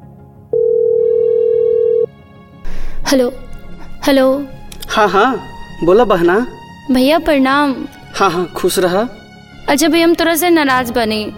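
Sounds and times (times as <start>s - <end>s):
unanswered phone call's ringback tone: 0.5s - 2.1s
speech: 3.1s - 3.4s, 4.0s - 11.3s.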